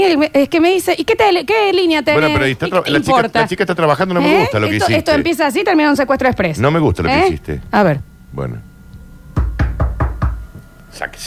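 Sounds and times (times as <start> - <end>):
speech: 0.0 - 8.7, 11.0 - 11.2
faint hum: 0.0 - 11.2
knocking on a door: 9.3 - 10.8.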